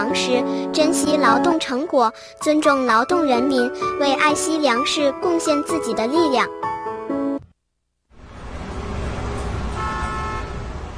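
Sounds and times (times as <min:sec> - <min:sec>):
speech: 0:00.0 - 0:06.8
vehicle passing in traffic at a road intersection: 0:08.1 - 0:10.9
car horn honking at a road intersection: 0:09.4 - 0:10.9.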